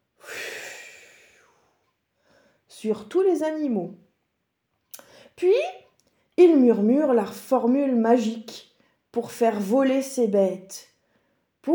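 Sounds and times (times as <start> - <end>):
breath blown out in a soft airy puff: 0.2 - 1.6
speech: 2.8 - 4.0, 5.4 - 5.8, 6.4 - 10.9.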